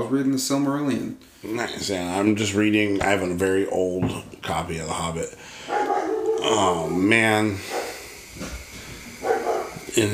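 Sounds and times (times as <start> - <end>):
speech: 0.0 - 5.7, 6.4 - 7.8, 10.0 - 10.1
steady hiss: 0.0 - 10.1
faint barks of neighbor's dogs through an open window: 5.7 - 8.1, 9.2 - 9.9.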